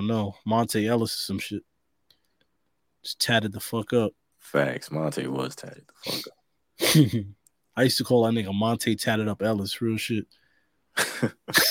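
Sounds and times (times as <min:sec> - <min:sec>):
speech: 0:00.0 - 0:01.7, 0:03.0 - 0:10.4, 0:11.0 - 0:11.6
harsh rasping cough: 0:11.0 - 0:11.6.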